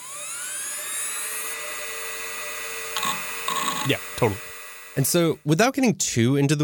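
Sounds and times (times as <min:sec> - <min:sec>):
laptop hard drive in a 2005-era PowerBook spinning up: 0:00.0 - 0:05.4
speech: 0:03.8 - 0:06.6.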